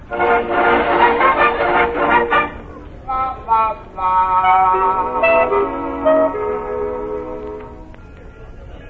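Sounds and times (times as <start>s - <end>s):
train horn blasts from an arriving train: 0.0s - 2.9s, 4.5s - 8.6s.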